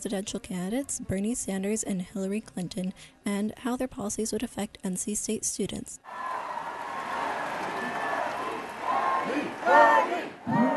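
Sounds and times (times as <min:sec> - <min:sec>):
speech: 0:00.0 - 0:06.5, 0:09.6 - 0:10.7
large crowd roaring and shouting outdoors at political rally: 0:06.1 - 0:10.7.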